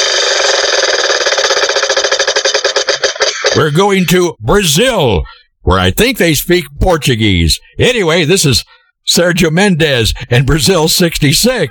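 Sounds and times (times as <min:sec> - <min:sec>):
spinning prize wheel ratchet clicking: 0:00.0 - 0:04.2
speech: 0:03.6 - 0:11.7.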